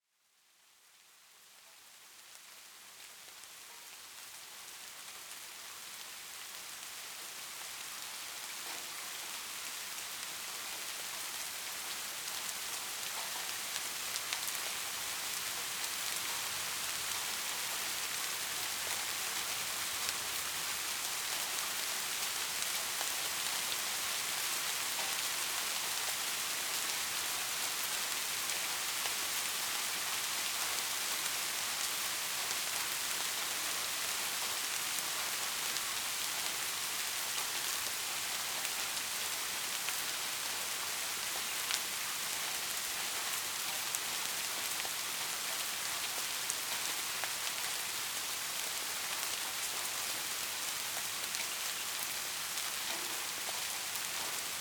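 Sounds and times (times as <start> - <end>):
ambient rain: 0.1 - 54.5.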